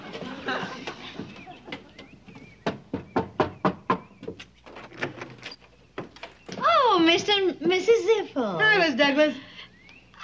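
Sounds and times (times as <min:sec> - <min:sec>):
laughter: 0:00.0 - 0:02.3
sharp knocks on a door: 0:02.4 - 0:04.4
speech: 0:07.2 - 0:09.5.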